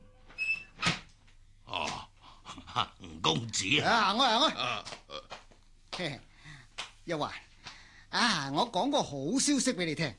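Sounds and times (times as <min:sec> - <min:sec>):
door opening with squeak: 0:00.1 - 0:01.0
speech: 0:02.8 - 0:05.0, 0:06.0 - 0:06.3, 0:07.1 - 0:07.5, 0:08.1 - 0:10.1.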